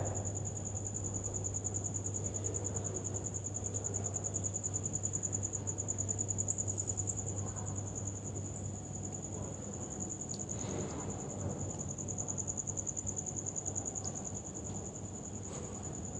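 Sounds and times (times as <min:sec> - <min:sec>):
crickets trilling: 0:00.0 - 0:16.1.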